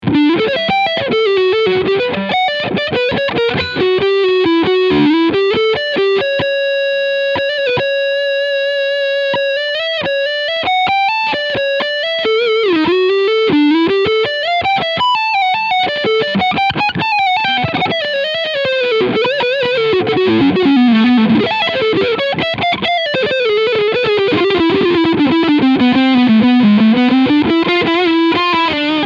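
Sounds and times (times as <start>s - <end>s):
Gibson Les Paul Standard 50s electric guitar lead sound on neck pickup: 0.0s - 29.0s.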